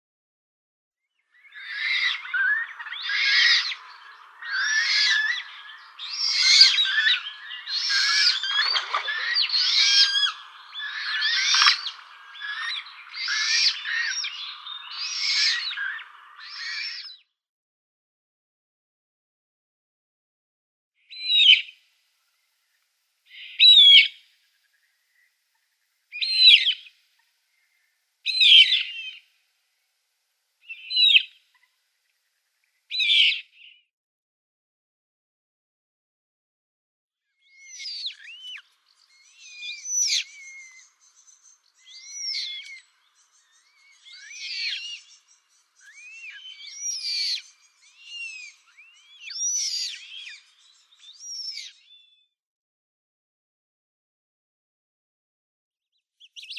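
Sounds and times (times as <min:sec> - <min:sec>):
downy young Eurasian Coot calling: 0:01.4 - 0:17.2, 0:21.1 - 0:21.8, 0:23.3 - 0:24.2, 0:26.1 - 0:26.9, 0:27.5 - 0:29.2, 0:30.6 - 0:31.7, 0:32.9 - 0:33.5, 0:37.6 - 0:51.9.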